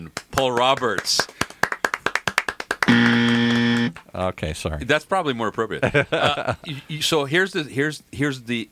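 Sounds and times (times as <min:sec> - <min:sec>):
hands clapping: 0:00.0 - 0:04.0
speech: 0:00.4 - 0:01.4, 0:03.9 - 0:08.7
sustained buzzy electronic tone: 0:02.9 - 0:04.0
laughter: 0:05.8 - 0:06.9.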